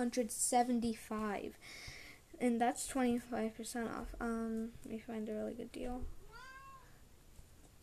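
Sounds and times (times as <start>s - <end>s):
speech: 0.0s - 6.2s
low hum: 0.0s - 7.8s
cat meowing: 6.2s - 7.0s.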